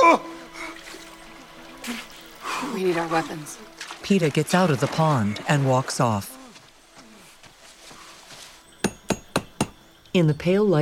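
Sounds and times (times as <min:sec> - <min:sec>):
speech: 0:02.8 - 0:06.4, 0:10.1 - 0:10.8
hammer driving a metal spike into a tree to collect water: 0:08.8 - 0:09.8.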